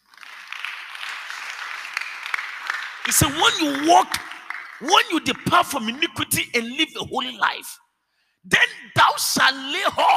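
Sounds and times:
audience clapping: 0.0 - 6.0
speech: 3.1 - 7.8, 8.4 - 10.1.

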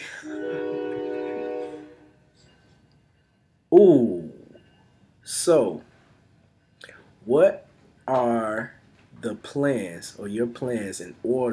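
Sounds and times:
train horn blast: 0.0 - 2.3
speech: 3.7 - 4.2, 5.4 - 5.9, 7.2 - 11.5.

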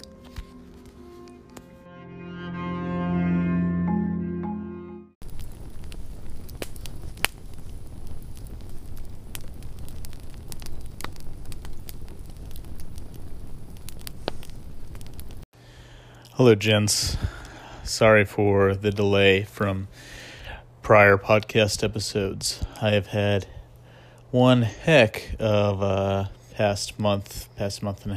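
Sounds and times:
brief swell of tonal music: 0.0 - 5.2
campfire crackling with pops and snaps: 5.2 - 28.1
speech: 16.4 - 20.2, 20.8 - 23.6, 24.3 - 28.1.

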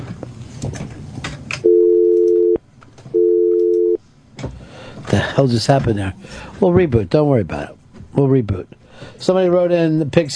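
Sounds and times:
crackly line noise from a dropped phone call: 1.5 - 4.0
telephone busy signal: 1.6 - 4.0
speech: 5.4 - 10.3.

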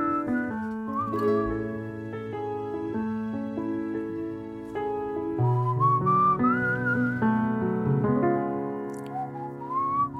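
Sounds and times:
person whistling a sliding melodic tune: 0.0 - 1.8, 5.4 - 7.7, 9.0 - 10.1
musical accompaniment with sustained chords: 0.0 - 10.1.

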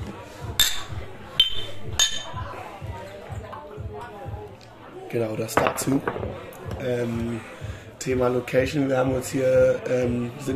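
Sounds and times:
low murmur of voices: 0.0 - 10.5
glasses clinking during a toast in a rustic hut: 0.6 - 2.4
speech: 5.1 - 10.5.

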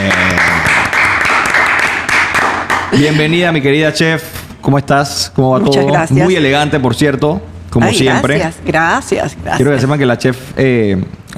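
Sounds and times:
audience applauding for a guest: 0.0 - 3.2
speech: 3.0 - 11.3.

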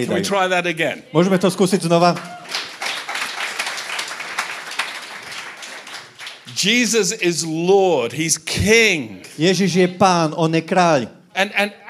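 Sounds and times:
speech: 0.0 - 2.4, 6.6 - 11.8
church audience applauding: 2.0 - 7.2.

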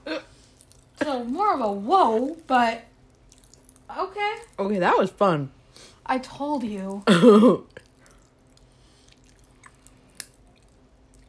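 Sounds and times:
low steady hum: 0.0 - 11.2
speech: 1.2 - 2.9, 3.9 - 7.8
faint mouth chewing sounds: 3.0 - 4.6, 7.7 - 11.2.

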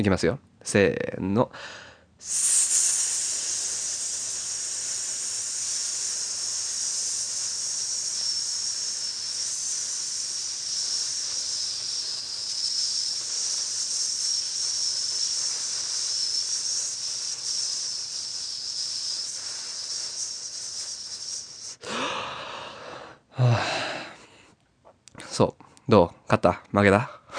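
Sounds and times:
speech: 0.0 - 2.9, 23.4 - 23.8, 25.4 - 27.2
quick breaths: 1.5 - 24.6
long steady hissing exhale in a breathing exercise: 1.6 - 24.2.

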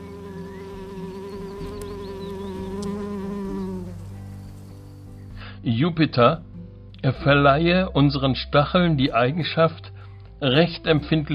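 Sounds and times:
bees buzzing in flight: 0.0 - 5.4
speech: 5.6 - 11.3.

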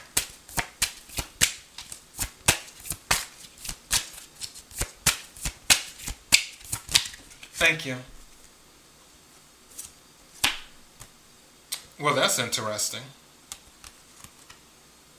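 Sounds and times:
tarot cards being shuffled by hand: 0.0 - 7.6, 9.7 - 11.1, 13.5 - 14.6
speech: 7.6 - 8.2, 12.0 - 13.2.

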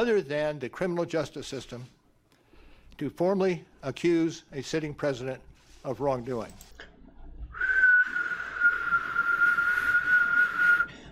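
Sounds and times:
speech: 0.0 - 2.0, 3.0 - 6.8
long steady whistle tone: 7.6 - 11.0.

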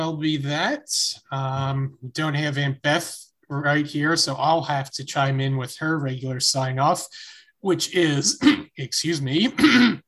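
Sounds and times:
speech: 0.0 - 10.0
person clearing throat: 8.2 - 8.8, 9.4 - 10.0.

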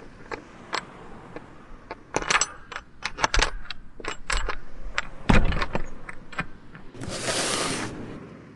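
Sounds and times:
bunch of keys jingling and clinking: 0.0 - 7.0
broad hissing noise: 7.0 - 8.2.

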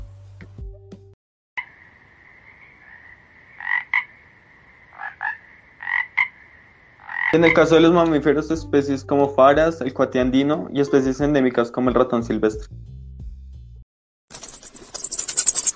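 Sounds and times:
sabanera frogs and rocket frogs croaking: 1.6 - 7.6
speech: 7.3 - 12.8.

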